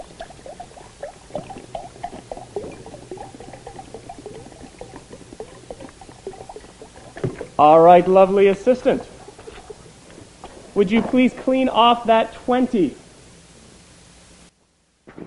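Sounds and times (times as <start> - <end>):
water pouring into a container: 0.0 - 9.9
speech: 7.6 - 9.1, 10.8 - 13.0.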